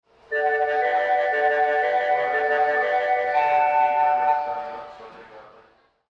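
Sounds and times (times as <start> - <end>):
melody: 0.3 - 5.1.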